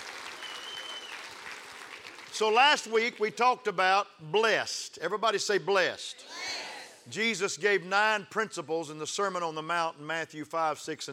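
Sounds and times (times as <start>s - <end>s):
room full of people clapping: 0.0s - 3.2s
speech: 2.4s - 6.4s, 7.1s - 11.1s.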